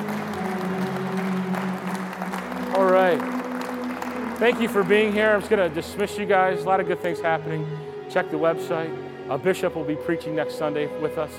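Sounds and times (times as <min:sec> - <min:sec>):
church congregation clapping hands at the end of a service: 0:00.0 - 0:07.2
speech: 0:04.4 - 0:11.3.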